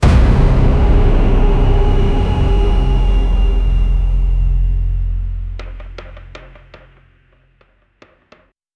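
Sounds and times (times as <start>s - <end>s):
dark intense cinematic background music: 0.0s - 6.5s.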